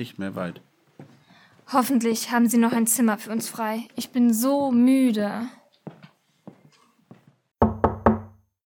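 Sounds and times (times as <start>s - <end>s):
speech: 0.0s - 0.7s, 1.7s - 5.6s
knocking on the wooden door of an inn by travellers seeking a room: 7.6s - 8.4s.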